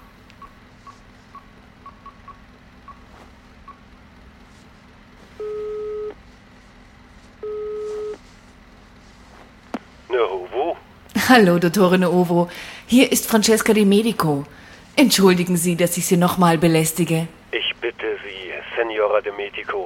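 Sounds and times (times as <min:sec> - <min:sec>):
low hum: 0:00.0 - 0:19.8
telephone ringback tones of an outgoing call to a forensic medicine department: 0:05.4 - 0:06.2, 0:07.4 - 0:08.2
faint telephone dialing beeps of an outgoing call: 0:07.4 - 0:08.2
speech: 0:11.3 - 0:17.4, 0:18.2 - 0:19.8.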